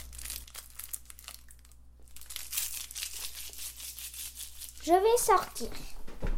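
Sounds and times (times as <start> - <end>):
plastic candy wrapper crinkling as it is unwrapped: 0.0 - 4.9
speech: 4.9 - 6.0.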